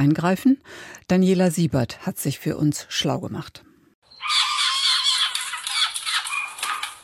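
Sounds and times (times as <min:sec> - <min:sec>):
speech: 0:00.0 - 0:03.7
baby Eurasian jays begging for food: 0:04.1 - 0:07.0.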